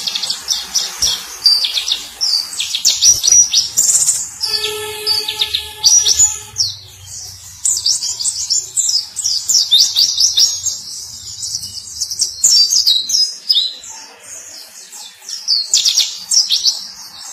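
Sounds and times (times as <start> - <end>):
white-eye twittering song: 0.5 - 13.6
low tonal hum: 3.5 - 9.4.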